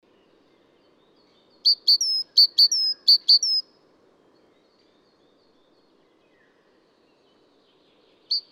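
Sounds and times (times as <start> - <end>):
speech: 1.6 - 3.3
adult male great tit singing sharp notes and sustained whistle: 1.7 - 3.6.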